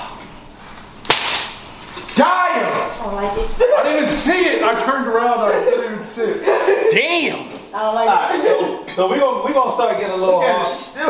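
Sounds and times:
dragon tongue whip striking a person's shoulders: 1.0s - 1.6s
speech: 2.2s - 11.0s
laughter: 5.0s - 7.2s, 8.1s - 9.6s.

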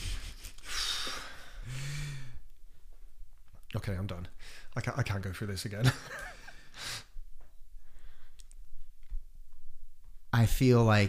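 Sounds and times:
person sniffling while crying: 0.0s - 2.4s, 6.4s - 7.2s
speech: 3.8s - 6.4s, 10.4s - 11.0s.

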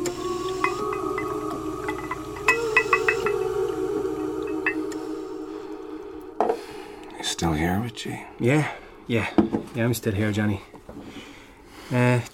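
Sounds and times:
drink pouring into a glass: 0.0s - 6.6s
liquid dripping: 0.0s - 7.6s
glass clinks: 0.6s - 3.5s
speech: 7.4s - 10.7s, 11.9s - 12.3s.

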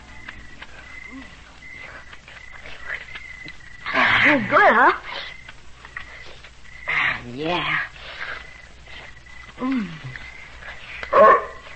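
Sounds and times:
faint humming background: 0.0s - 11.7s
speech: 4.3s - 5.3s, 7.3s - 7.9s, 9.6s - 10.2s
dog barking or yipping: 11.1s - 11.6s.

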